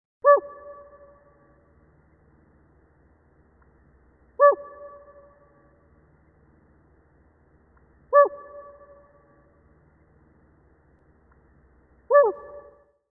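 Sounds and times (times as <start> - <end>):
loon calling: 4.4 - 5.6, 8.1 - 9.5, 12.1 - 12.8.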